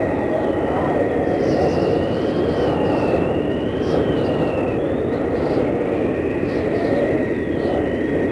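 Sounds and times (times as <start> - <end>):
wind: 0.0 - 8.3.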